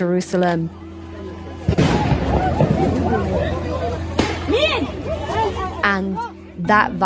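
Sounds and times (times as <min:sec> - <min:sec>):
speech: 0:00.0 - 0:00.8, 0:05.9 - 0:07.0
crowd of people shouting and clamoring: 0:00.7 - 0:06.6
heavy explosions from airstrikes on Gaza: 0:01.7 - 0:05.0.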